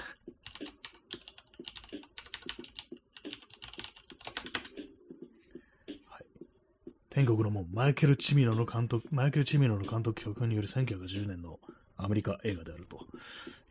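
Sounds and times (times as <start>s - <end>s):
typing on a computer keyboard: 0.3s - 4.9s
speech: 7.2s - 13.4s.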